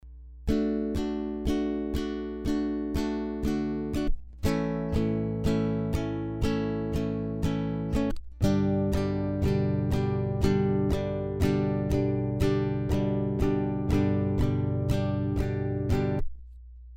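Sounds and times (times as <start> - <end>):
basic rhythm guitar strumming D A G chords: 0.4 - 16.4.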